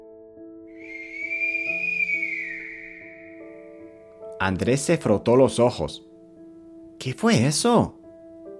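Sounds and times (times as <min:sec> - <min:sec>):
long high-pitched flute-like whistle: 0:00.8 - 0:03.8
speech: 0:04.4 - 0:06.1, 0:07.0 - 0:08.0.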